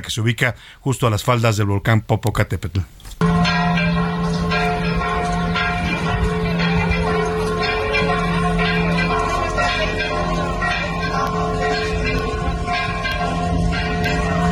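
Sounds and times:
speech: 0.0s - 3.2s
village church bells ringing for evacuation drill: 3.2s - 14.5s.

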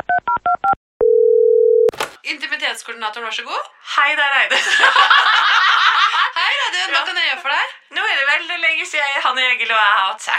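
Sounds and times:
steady telephone tone: 1.0s - 1.9s
speech: 2.3s - 5.8s, 6.4s - 10.3s
laughter: 4.5s - 7.7s.

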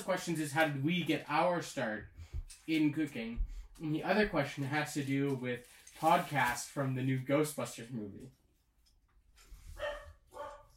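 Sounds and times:
speech: 0.0s - 8.4s
dog barking: 9.8s - 10.7s.

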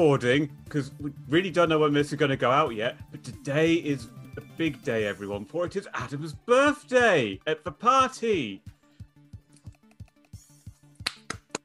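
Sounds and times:
speech: 0.0s - 8.8s
lone person clapping hands: 11.0s - 11.6s.

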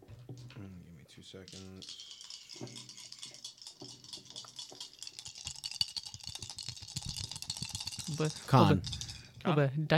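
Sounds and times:
speech: 0.6s - 3.0s, 8.1s - 9.9s
dice rattling and rolling for a saving throw: 1.5s - 9.4s.

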